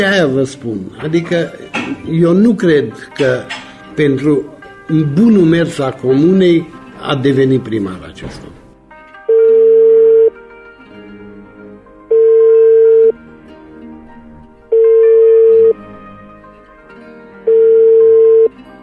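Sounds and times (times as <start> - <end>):
speech: 0.0 - 8.6
ringback tone of an unanswered outgoing phone call: 9.3 - 10.3, 12.1 - 13.2, 14.7 - 15.8, 17.5 - 18.5.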